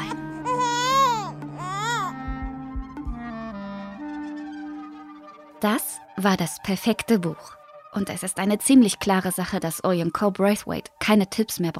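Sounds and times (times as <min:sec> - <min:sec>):
baby crying: 0:00.0 - 0:02.2
low thumps: 0:02.2 - 0:03.5
speech: 0:05.6 - 0:11.7.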